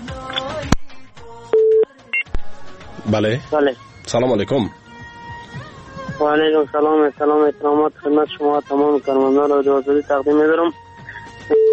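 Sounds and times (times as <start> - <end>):
speech: 3.1 - 4.8, 6.2 - 10.8
telephone line tones as a radio call-in line connects the next caller: 11.0 - 11.7.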